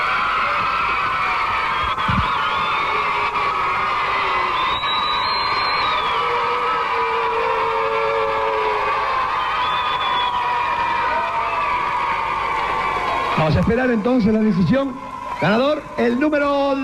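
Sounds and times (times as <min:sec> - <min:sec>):
crowd cheering and applause: 0:00.0 - 0:16.8
people yelling: 0:00.0 - 0:16.8
shrill whistles: 0:01.4 - 0:03.3, 0:04.1 - 0:11.7
speech: 0:13.5 - 0:16.8.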